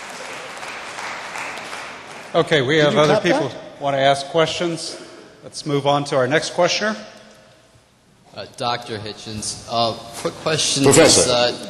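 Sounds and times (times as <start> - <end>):
crowd applauding: 0.0 - 3.1
speech: 2.3 - 7.2, 8.4 - 11.6.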